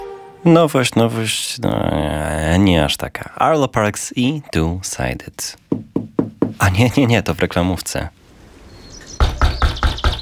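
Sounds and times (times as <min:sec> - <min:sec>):
speech: 0:00.5 - 0:05.9, 0:06.5 - 0:08.2
sharp loud knocking on a door: 0:05.7 - 0:06.7, 0:09.2 - 0:10.2.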